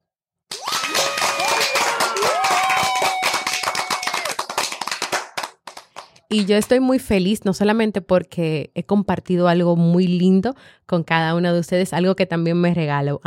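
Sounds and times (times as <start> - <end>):
person whooping: 0.5 - 4.5
audience of mothers applauding: 0.5 - 6.2
speech: 6.3 - 13.2.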